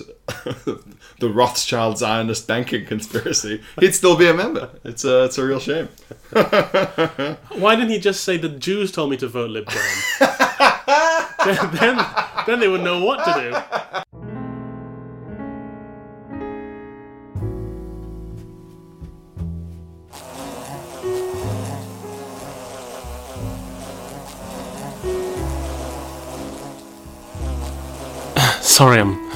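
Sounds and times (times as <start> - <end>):
speech: 0.0 - 14.0, 28.8 - 29.3
laughter: 6.0 - 7.6, 9.7 - 14.1
droning buzz: 20.1 - 28.6.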